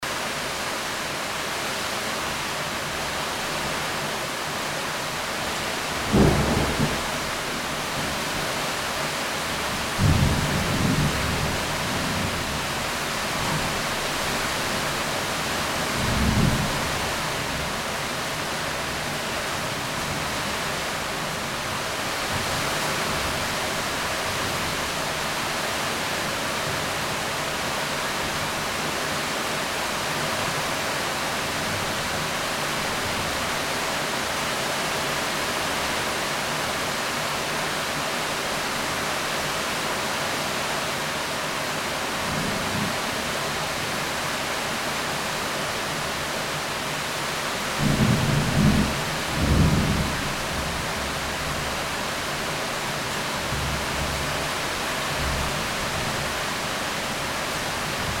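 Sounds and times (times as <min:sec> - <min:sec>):
heavy rain falling on a house roof: 0:00.0 - 0:58.1
thunder: 0:06.0 - 0:08.2, 0:09.8 - 0:12.6, 0:47.8 - 0:50.8.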